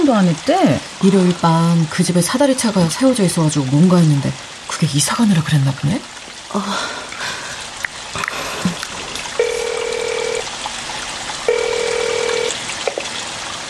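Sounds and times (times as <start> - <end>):
speech: 0.0 - 7.0
quiet hiss: 6.4 - 13.0
telephone line tone: 9.4 - 10.5, 11.5 - 12.6.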